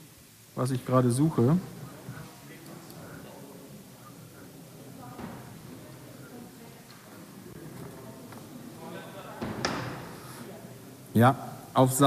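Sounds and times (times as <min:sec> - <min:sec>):
murmur of people talking: 0:00.0 - 0:12.0
speech: 0:00.6 - 0:01.8, 0:11.2 - 0:12.0
door slamming shut as someone leaves the room: 0:09.4 - 0:10.2.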